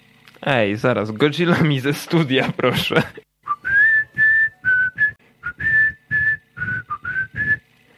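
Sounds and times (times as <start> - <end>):
speech: 0.5 - 3.2
person whistling a short solo melody: 3.5 - 7.7.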